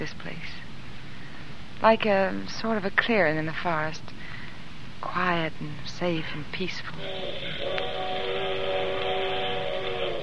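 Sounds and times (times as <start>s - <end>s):
rumbling wash of noise: 0.0s - 10.2s
speech: 1.8s - 4.2s, 5.0s - 8.2s
train whistle long steady blast: 7.0s - 10.2s.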